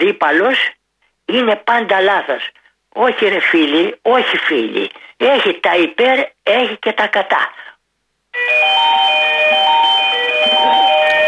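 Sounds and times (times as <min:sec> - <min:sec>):
speech: 0:00.0 - 0:07.7
mobile phone ringing with a bright electronic melody: 0:08.4 - 0:11.2.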